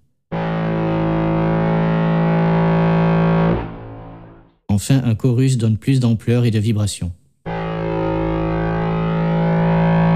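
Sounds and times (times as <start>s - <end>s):
sustained synth tone with drive distortion and low-pass filter: 0.3s - 4.5s, 7.5s - 10.1s
speech: 4.8s - 7.2s.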